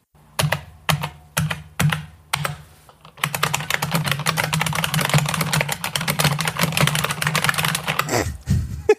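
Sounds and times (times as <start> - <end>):
typing on IBM Model M mechanical keyboard: 0.4 - 8.1
laughter: 8.1 - 8.9.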